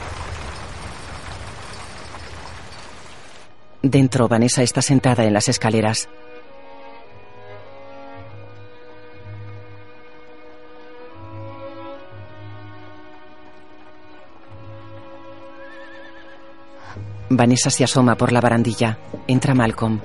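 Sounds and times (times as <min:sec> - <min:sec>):
horse-drawn carriage rumbling: 0:00.0 - 0:03.5
speech: 0:03.8 - 0:06.3, 0:17.4 - 0:20.0
horse neighing and whinnying: 0:15.6 - 0:16.4.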